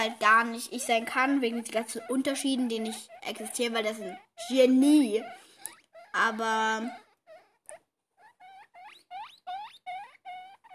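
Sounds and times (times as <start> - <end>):
speech: 0.0 - 5.4, 6.1 - 7.0
guinea pig squeaking in high rising whistles: 0.0 - 10.7.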